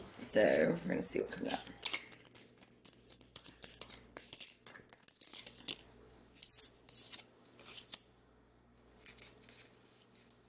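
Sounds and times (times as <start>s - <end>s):
speech: 0.2s - 2.0s
tarot cards being shuffled: 1.4s - 8.1s, 9.0s - 10.4s.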